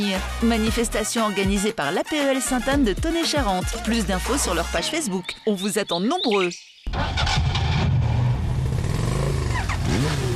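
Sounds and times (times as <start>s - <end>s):
speech: 0.0s - 7.5s
engine cranking, starting and revving: 6.9s - 10.3s.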